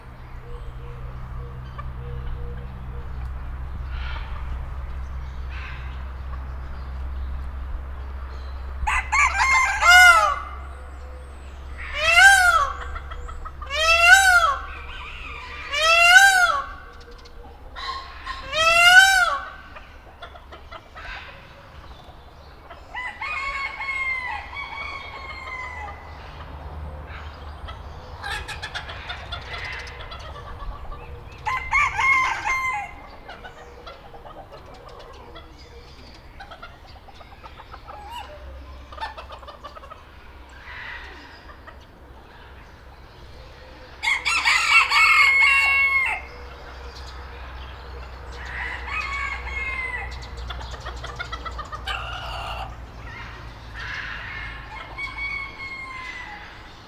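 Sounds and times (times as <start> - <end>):
chickens in a farmyard at a zoo: 0.0 - 56.8
peacock in a farmyard at a zoo: 0.0 - 56.8
rooster in a farmyard at a zoo: 8.6 - 19.9, 22.8 - 35.8, 43.4 - 56.8.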